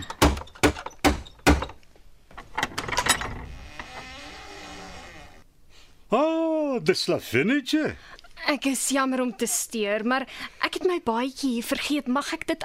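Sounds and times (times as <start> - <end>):
door creaking open: 2.4 - 5.5
speech: 6.1 - 12.6.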